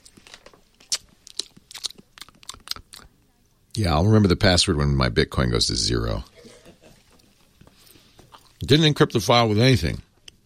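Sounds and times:
crunching and chewing a fruit roll snack: 0.0 - 3.1, 7.0 - 8.7
speech: 3.8 - 6.3, 8.7 - 10.0.

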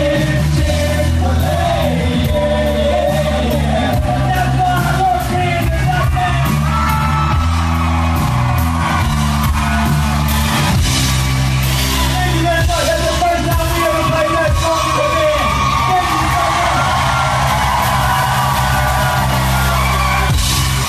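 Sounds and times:
huge concert crowd of thousands screaming and singing along: 0.0 - 20.8
loud live concert music: 0.0 - 20.8.

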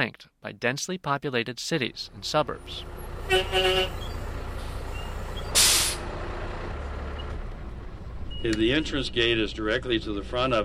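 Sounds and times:
speech: 0.0 - 4.1, 8.4 - 10.6
tour bus engine rumble: 1.8 - 10.6
bus horn toots: 3.2 - 6.0
bus air brakes hissing: 3.8 - 6.1.

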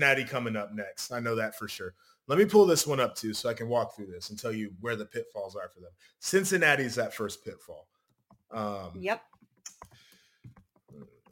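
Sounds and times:
speech: 0.0 - 7.9, 8.5 - 9.3
computer keyboard typing: 8.0 - 8.6, 9.3 - 11.2.

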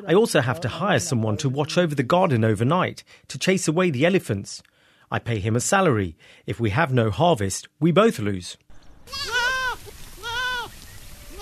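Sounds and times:
speech: 0.0 - 9.4
goats, mothers and kids, bleating while grazing in a park: 9.1 - 10.7.

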